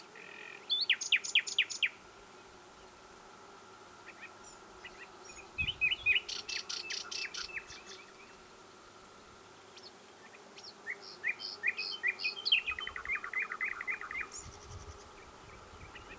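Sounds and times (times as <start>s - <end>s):
common nightingale Luscinia megarhynchos singing: 4.8s - 8.3s, 10.6s - 16.1s.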